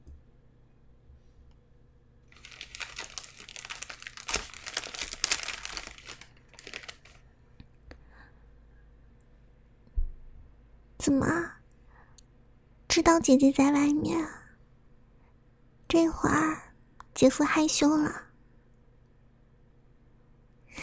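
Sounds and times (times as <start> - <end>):
wrapping material crinkling as a package is unwrapped: 2.3 - 7.2
speech: 11.1 - 11.5, 13.0 - 14.4, 16.0 - 16.6, 17.2 - 18.2.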